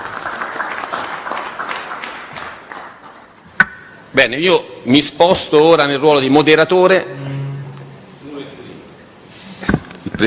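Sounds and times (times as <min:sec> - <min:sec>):
crowd applauding: 0:00.0 - 0:03.4
speech: 0:04.2 - 0:07.3.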